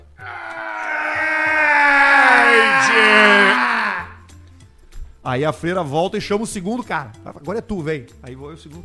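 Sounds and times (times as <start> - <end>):
voice imitating a loud drawn-out scream: 0.2 - 4.2
speech: 5.3 - 8.8.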